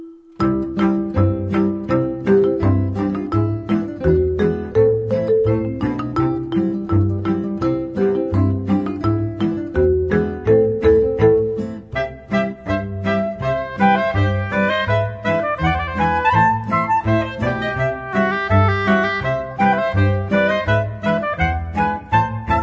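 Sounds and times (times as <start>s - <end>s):
accordion in Germany: 0.4s - 22.6s.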